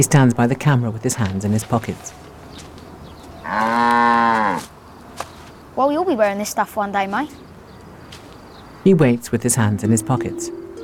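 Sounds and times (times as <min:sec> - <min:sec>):
speech: 0:00.0 - 0:02.3, 0:03.5 - 0:04.7, 0:05.8 - 0:07.5, 0:08.8 - 0:10.6
cow mooing by a white metal gate: 0:03.4 - 0:04.7.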